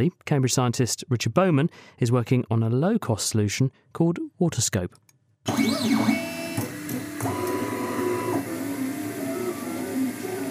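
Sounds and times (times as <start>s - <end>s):
speech: 0.0s - 6.2s
3D printer stepper motors whining: 5.5s - 10.4s
continuous mechanical hum of a 3D printer: 5.5s - 10.4s.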